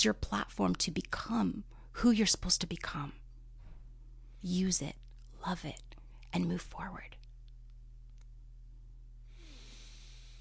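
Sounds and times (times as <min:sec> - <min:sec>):
speech: 0:00.0 - 0:03.2, 0:04.4 - 0:07.2
steady low electrical hum: 0:00.0 - 0:10.4
deep breath drawn in close to the microphone: 0:09.2 - 0:10.4.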